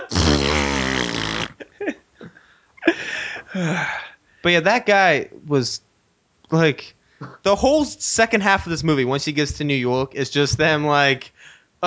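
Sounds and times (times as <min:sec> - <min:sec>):
soft vocal snorts: 0:00.0 - 0:01.6
voice imitating an elephant fart: 0:00.0 - 0:01.7
speech: 0:03.0 - 0:05.9, 0:06.5 - 0:11.8.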